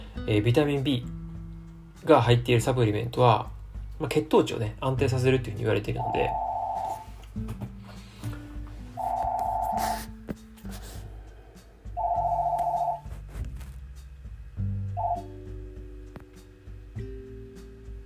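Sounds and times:
speech: 0:00.2 - 0:01.2, 0:02.0 - 0:06.4, 0:07.4 - 0:07.7
telephone ringing in electronic trilling bursts: 0:06.0 - 0:07.1, 0:09.0 - 0:10.0, 0:12.0 - 0:13.0, 0:15.0 - 0:15.3.

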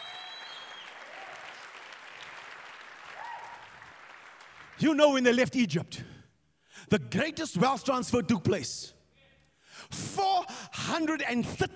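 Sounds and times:
cheers and whoops: 0:00.0 - 0:01.7, 0:03.0 - 0:03.8
worshipping church audience clapping: 0:00.0 - 0:04.8
speech: 0:04.8 - 0:06.2, 0:06.9 - 0:09.0, 0:09.8 - 0:11.7.

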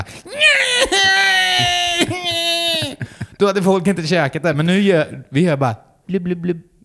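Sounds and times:
voice imitating crayfish shrieking like a crying baby: 0:00.0 - 0:03.0
laughter: 0:00.0 - 0:03.8
speech: 0:03.4 - 0:06.7.

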